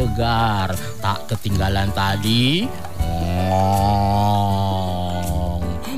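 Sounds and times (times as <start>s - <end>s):
speech: 0.2s - 4.7s
cow mooing as it comes out of its pen: 3.0s - 5.8s.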